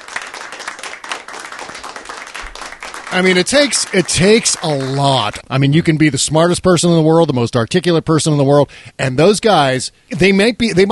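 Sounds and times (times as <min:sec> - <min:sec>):
crowd applauding with many hands clapping: 0:00.0 - 0:05.4
speech: 0:03.1 - 0:10.9.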